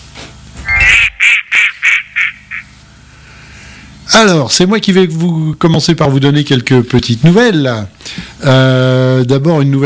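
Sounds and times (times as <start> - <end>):
duck quacking: 0.6 - 2.7
speech: 4.2 - 9.8.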